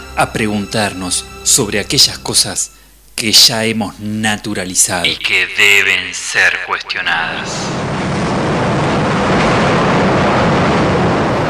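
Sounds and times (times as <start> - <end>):
speech: 0.2 - 8.1
crowded subway train running: 7.4 - 11.4.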